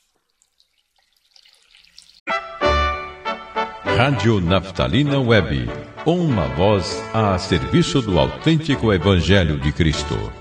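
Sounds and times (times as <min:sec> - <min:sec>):
faint scattered water drips: 0:00.0 - 0:02.3
speech: 0:04.0 - 0:10.3.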